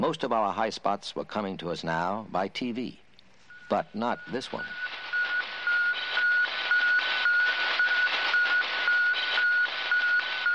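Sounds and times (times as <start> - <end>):
speech: 0.0 - 3.0, 3.7 - 4.9
loud hissing radio static: 3.4 - 10.5
satellite radio transmitter beeping: 3.5 - 10.5.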